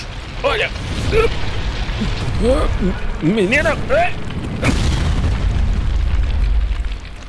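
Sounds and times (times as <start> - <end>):
heavy booming low rumble: 0.0 - 7.2
speech: 0.4 - 4.9
gunshot: 4.5 - 6.8.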